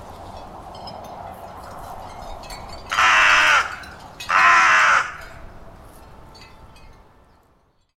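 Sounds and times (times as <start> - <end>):
carrion crow rasping caws: 2.9 - 5.4.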